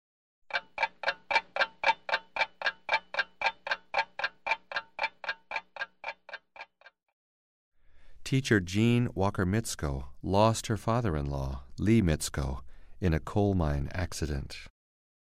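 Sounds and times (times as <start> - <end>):
alarm clock ticking: 0.5 - 6.8
speech: 8.3 - 14.7.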